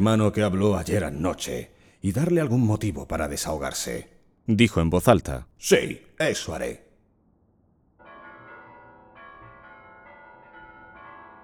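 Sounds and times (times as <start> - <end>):
speech: 0.0 - 6.8
large monastery bell ringing as alarm: 8.0 - 11.4.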